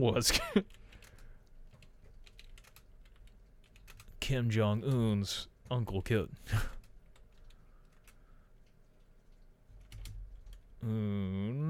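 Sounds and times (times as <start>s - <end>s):
speech: 0.0s - 0.8s, 4.3s - 6.8s, 10.8s - 11.6s
typing on a computer keyboard: 0.6s - 4.2s, 6.7s - 8.2s, 8.9s - 10.7s.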